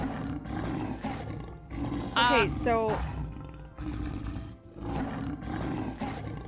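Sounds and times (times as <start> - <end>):
leopard roaring: 0.0 - 6.4
speech: 2.2 - 3.2.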